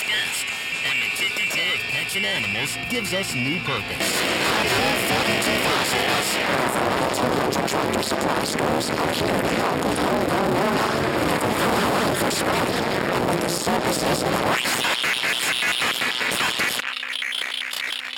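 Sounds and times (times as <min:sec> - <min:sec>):
thin steady high electronic whine: 0:00.0 - 0:09.7
gritty flickering electronic bursts from ring modulators: 0:00.0 - 0:16.8
dense electronic noise hiss from three ring modulators: 0:00.0 - 0:18.1
speech: 0:01.2 - 0:14.8.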